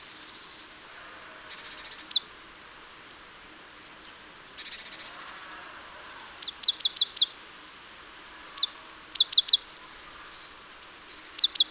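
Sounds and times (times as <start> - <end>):
background hiss: 0.0 - 11.6
marsh tit Poecile palustris calling: 4.5 - 7.4, 8.5 - 10.0, 11.2 - 11.6.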